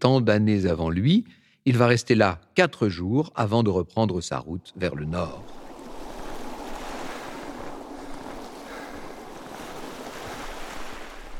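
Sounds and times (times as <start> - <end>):
speech: 0.0 - 5.6
light breeze: 4.8 - 11.3
small waves lapping on a sandy beach: 5.2 - 11.3.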